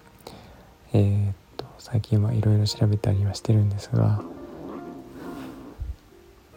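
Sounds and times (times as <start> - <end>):
speech: 0.9 - 4.4
cat yowling meow: 4.2 - 5.9.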